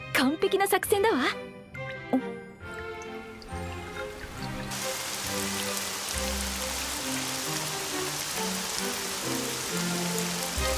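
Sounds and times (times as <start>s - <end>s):
soft music with low sustained tones: 0.0s - 10.7s
speech: 0.2s - 1.5s
steady rain falling: 3.0s - 10.7s.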